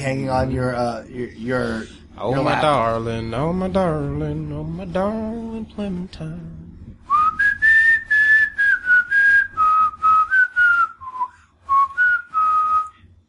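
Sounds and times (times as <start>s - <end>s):
speech: 0.0s - 6.6s
faint low rumble: 0.0s - 11.3s
whistled melody outside a window: 7.1s - 13.0s.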